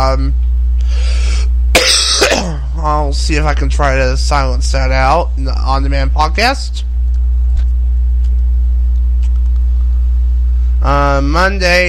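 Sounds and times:
low steady hum: 0:00.0 - 0:11.8
speech: 0:00.1 - 0:01.1, 0:03.0 - 0:06.9, 0:10.8 - 0:11.8
person coughing: 0:01.8 - 0:02.7
throat clearing: 0:01.8 - 0:02.7.

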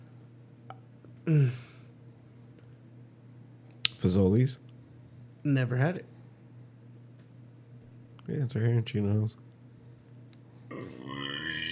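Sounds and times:
speech: 0:01.3 - 0:01.6, 0:04.0 - 0:04.7, 0:05.4 - 0:06.1, 0:08.3 - 0:09.5
long loud throaty burp: 0:10.7 - 0:11.7.

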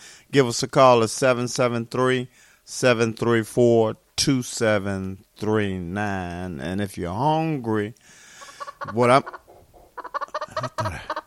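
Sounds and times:
speech: 0:00.3 - 0:08.2, 0:08.8 - 0:09.4, 0:10.6 - 0:11.2
chicken clucking: 0:08.4 - 0:11.2.

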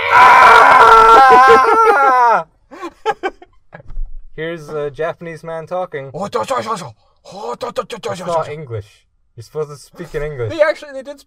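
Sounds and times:
person voicing a roar-like scream imitating a giant monster's cry: 0:00.0 - 0:02.5
laughter: 0:00.8 - 0:03.9
speech: 0:04.5 - 0:11.2.

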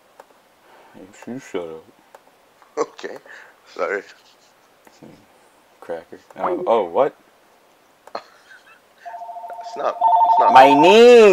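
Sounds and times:
speech: 0:01.0 - 0:02.0, 0:02.8 - 0:07.3, 0:09.8 - 0:11.3
electronic telephone keypad beeps: 0:09.1 - 0:10.8.

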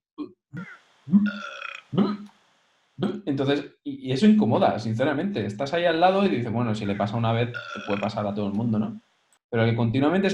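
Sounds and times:
person imitating burping with their voice: 0:00.2 - 0:02.3
speech: 0:01.1 - 0:02.2, 0:03.3 - 0:10.3.

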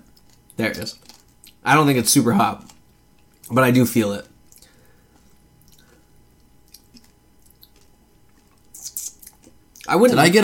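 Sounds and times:
chewing a peanut M&M candy: 0:00.0 - 0:01.7, 0:02.4 - 0:03.6, 0:04.4 - 0:09.9
speech: 0:00.6 - 0:02.8, 0:03.5 - 0:04.3, 0:09.9 - 0:10.4.

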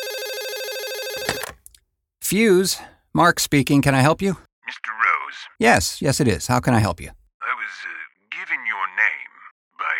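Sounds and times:
telephone ringing with electronic warble: 0:00.0 - 0:01.6
speech: 0:02.3 - 0:04.9, 0:05.6 - 0:07.9.

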